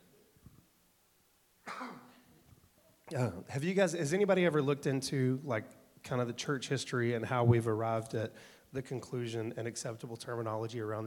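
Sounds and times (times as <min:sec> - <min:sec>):
single loud harsh raspy cough: 0:01.6 - 0:02.2
speech: 0:03.1 - 0:11.0.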